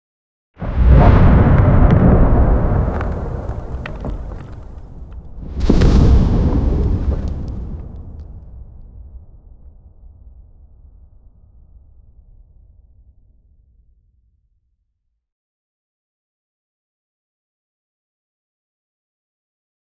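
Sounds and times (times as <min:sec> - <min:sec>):
dragon landing on rocky ground: 0:01.4 - 0:08.3.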